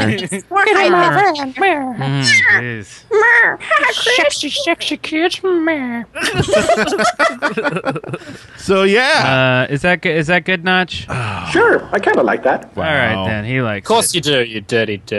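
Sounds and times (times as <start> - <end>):
speech: 0.0 - 15.1
cats meowing: 2.0 - 2.6
laughter: 6.2 - 8.5.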